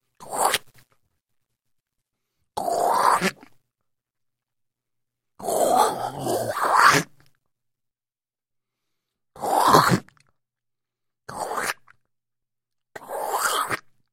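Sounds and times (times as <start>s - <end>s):
person spitting: 0.1s - 0.9s, 2.6s - 3.6s, 5.4s - 7.4s, 9.4s - 10.3s, 11.3s - 12.1s, 12.9s - 14.0s.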